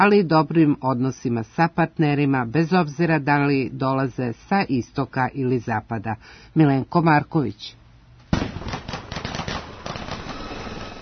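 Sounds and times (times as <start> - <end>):
speech: 0.0 - 7.8
gunfire at a military demonstration drill: 8.3 - 11.0.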